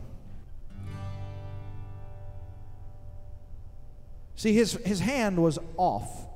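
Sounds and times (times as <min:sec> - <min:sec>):
spruce acoustic guitar strum: 0:00.0 - 0:04.1
speech: 0:04.4 - 0:06.2.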